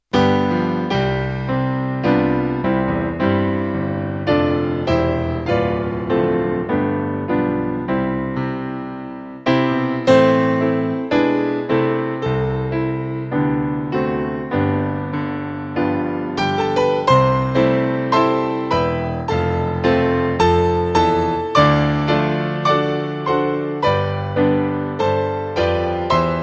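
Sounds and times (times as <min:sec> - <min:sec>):
hymn played on piano: 0:00.0 - 0:26.4.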